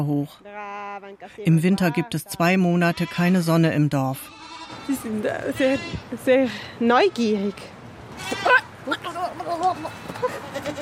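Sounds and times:
speech: 0:00.0 - 0:10.7
small herd of goats and sheep bleating: 0:01.8 - 0:03.6, 0:04.2 - 0:06.1, 0:07.0 - 0:10.7.

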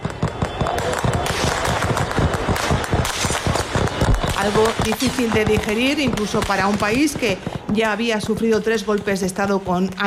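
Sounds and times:
rapid dense bursts of gunfire: 0:00.0 - 0:07.7
speech: 0:04.4 - 0:10.0.

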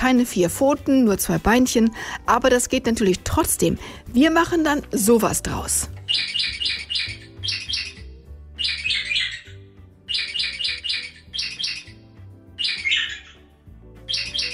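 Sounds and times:
speech: 0:00.0 - 0:07.1
low musical backing: 0:00.0 - 0:14.5
budgerigar chirps arranged into a pop melody: 0:06.0 - 0:12.0, 0:12.6 - 0:14.5.

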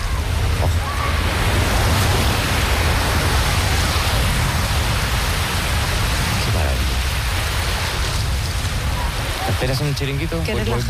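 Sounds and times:
sea waves breaking on a beach: 0:00.0 - 0:10.8
speech: 0:09.6 - 0:10.8.

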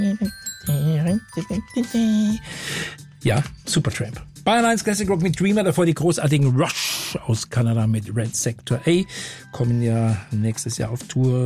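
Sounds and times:
bright glockenspiel chimes in a song: 0:00.0 - 0:03.9
speech: 0:01.4 - 0:11.4.

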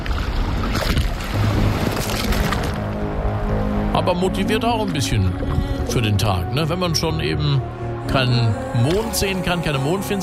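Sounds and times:
sea water heard underwater at the coast of Rügen: 0:00.0 - 0:06.6
speech: 0:04.1 - 0:10.2.

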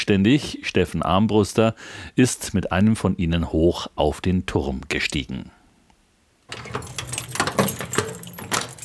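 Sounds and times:
speech: 0:00.0 - 0:05.6, 0:06.5 - 0:06.9
heavy cast-iron lighthouse door in Lindau being unlocked and pushed open: 0:06.5 - 0:08.8
keys jangling at the cast-iron lighthouse door in Lindau: 0:06.5 - 0:08.8.

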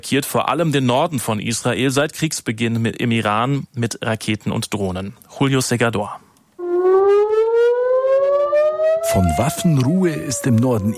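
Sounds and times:
speech: 0:00.0 - 0:06.2, 0:09.0 - 0:10.9
civil defense air raid siren wailing in northern Israel: 0:06.6 - 0:10.9.

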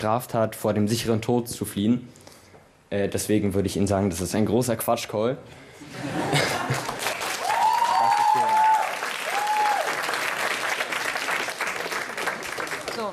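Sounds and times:
speech: 0:00.0 - 0:02.2, 0:02.9 - 0:06.9
laughter: 0:05.8 - 0:07.2
audience at a broadcast show applauding: 0:06.3 - 0:13.1
audience cheers and whoops: 0:07.2 - 0:10.2.

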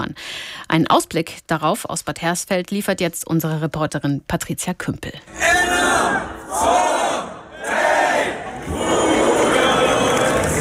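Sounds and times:
speech: 0:00.7 - 0:06.9
festival crowd cheering and shouting in a town: 0:05.3 - 0:10.5.

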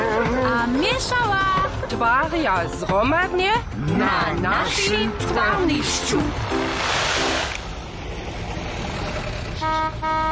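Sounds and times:
speech: 0:01.0 - 0:06.6
rushing hiss of traffic and engine noise: 0:05.1 - 0:10.3
truck horn honking: 0:09.6 - 0:10.3.

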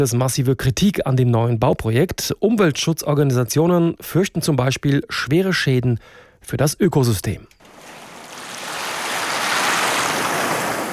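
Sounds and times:
speech: 0:00.0 - 0:07.6
Indian Ocean surf on an island coast off Kenya: 0:07.6 - 0:10.9.

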